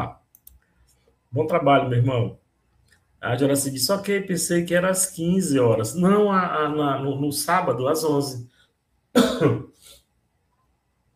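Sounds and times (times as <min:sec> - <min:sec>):
speech: 0:01.3 - 0:02.4, 0:03.2 - 0:08.5, 0:09.2 - 0:09.7
dry hacking cough: 0:09.2 - 0:09.9
short raspy throat-clearing: 0:09.2 - 0:09.9.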